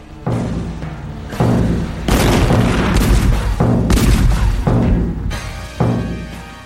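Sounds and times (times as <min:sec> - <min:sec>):
rumbling echoes of cannon fire: 0:00.0 - 0:06.1
heavy cannon blasts: 0:02.1 - 0:04.8.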